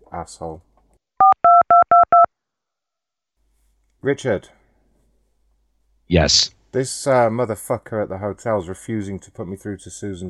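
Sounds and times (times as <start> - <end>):
speech: 0.2 - 0.7, 4.0 - 4.6, 6.1 - 10.2
touch-tone DTMF dialing beeps on a telephone: 1.2 - 2.3.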